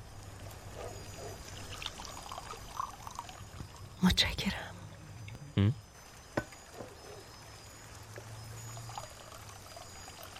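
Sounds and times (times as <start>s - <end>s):
juice pouring into a glass: 1.5s - 4.0s, 8.6s - 10.3s
speech: 4.0s - 4.7s, 5.6s - 5.8s.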